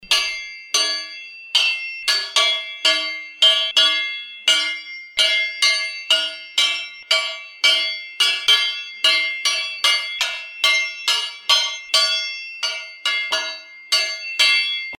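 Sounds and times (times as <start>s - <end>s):
blacksmith hammering iron: 0.0s - 14.9s.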